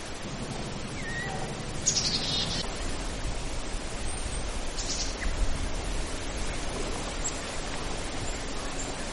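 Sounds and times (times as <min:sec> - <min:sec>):
steady hiss of outdoor noise: 0:00.0 - 0:09.1
gray jay calling across water: 0:00.9 - 0:02.6.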